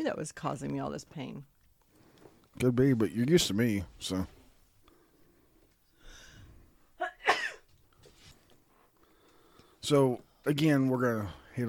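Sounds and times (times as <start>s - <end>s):
speech: 0.0s - 1.6s, 2.6s - 4.4s, 9.9s - 11.6s
person sneezing: 7.0s - 7.7s.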